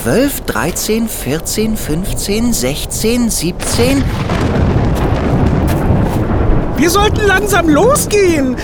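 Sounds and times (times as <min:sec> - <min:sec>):
speech: 0:00.0 - 0:04.7, 0:06.8 - 0:08.6
thunder rumbling from a storm over mountain peaks after lightning: 0:00.0 - 0:08.6.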